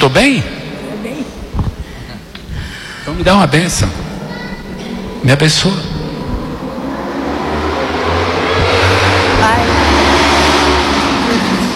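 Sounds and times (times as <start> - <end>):
speech: 0.1 - 0.5, 3.1 - 4.1, 5.2 - 5.9
motorcycle engine droning past: 4.0 - 11.7.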